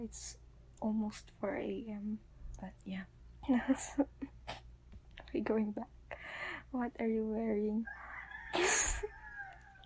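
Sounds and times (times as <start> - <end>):
speech: 0.0 - 4.6, 5.3 - 8.0
rooster crowing: 7.8 - 9.8.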